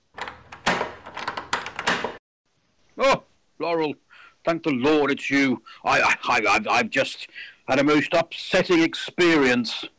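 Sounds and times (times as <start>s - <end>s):
door being unlocked and opened: 0.0s - 2.2s
speech: 3.0s - 9.9s.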